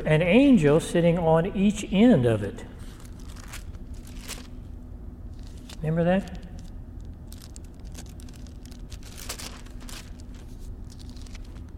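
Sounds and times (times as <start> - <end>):
low steady hum: 0.0 - 11.7
speech: 0.1 - 2.7, 5.8 - 6.4
papers rustling and shuffling during a search: 2.8 - 11.7.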